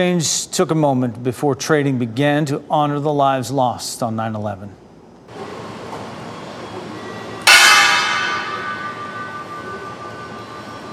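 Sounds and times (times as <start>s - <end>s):
speech: 0.0s - 5.4s
single loud metallic bell strike: 7.4s - 10.6s.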